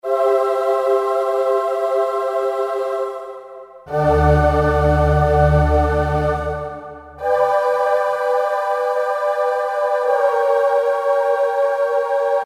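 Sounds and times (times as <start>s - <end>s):
a cappella tune on a synthesizer: 0.0s - 12.4s.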